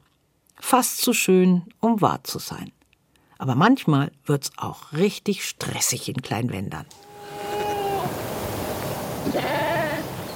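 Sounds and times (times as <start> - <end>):
speech: 0.7 - 2.8, 3.4 - 7.1, 9.2 - 9.8
Coburg fox sheep bleating: 7.0 - 8.3, 9.2 - 10.2.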